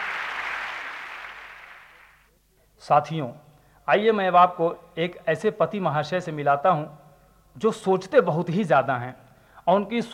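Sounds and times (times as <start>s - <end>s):
audience applause: 0.0s - 2.2s
speech: 2.8s - 7.0s, 7.6s - 10.1s.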